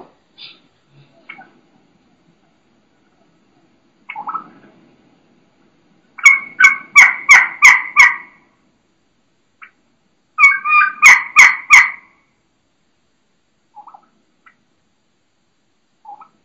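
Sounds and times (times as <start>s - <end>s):
wild turkey hen raspy yelps: 4.1s - 4.5s, 6.2s - 8.5s, 10.4s - 12.2s, 13.8s - 14.6s, 16.0s - 16.4s.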